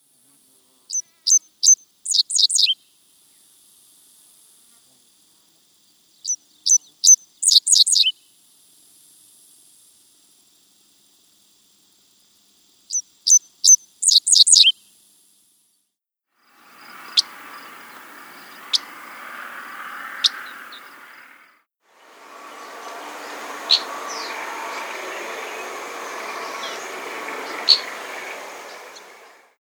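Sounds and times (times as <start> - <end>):
Dickcissel calling: 0.9 - 2.8, 6.2 - 8.2, 12.9 - 14.8, 16.6 - 21.6, 22.2 - 29.4.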